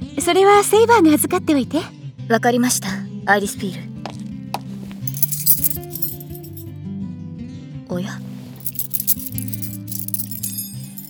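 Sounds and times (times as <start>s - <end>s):
speech: 0.2s - 3.9s
bunch of house keys jingling while being handled: 4.6s - 6.7s, 8.3s - 11.0s.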